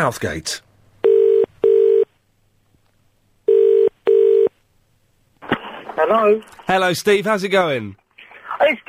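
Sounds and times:
speech: 0:00.0 - 0:00.6, 0:06.1 - 0:08.0, 0:08.6 - 0:08.8
telephone ringback tone as a call is placed: 0:01.0 - 0:02.1, 0:03.5 - 0:04.5.

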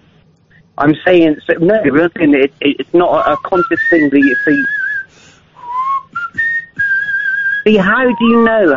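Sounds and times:
faint breathy sounds between notes: 0:00.0 - 0:00.8, 0:05.0 - 0:06.4
speech: 0:00.8 - 0:04.8, 0:07.6 - 0:08.7
person whistling a short wavering melody: 0:03.2 - 0:08.7.

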